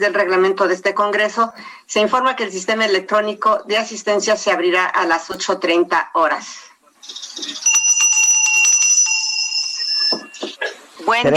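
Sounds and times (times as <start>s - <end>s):
speech: 0.0s - 7.7s, 11.1s - 11.3s
electric bell ringing with rapid metallic strikes: 7.0s - 10.6s.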